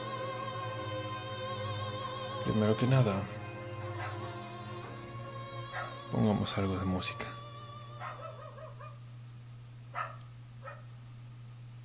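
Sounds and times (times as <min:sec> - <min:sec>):
steady low electrical hum: 0:00.0 - 0:11.8
speech: 0:02.4 - 0:03.4, 0:06.1 - 0:07.4
dogs barking and yelping: 0:03.9 - 0:04.4, 0:05.7 - 0:06.1, 0:07.9 - 0:09.1, 0:09.9 - 0:11.0.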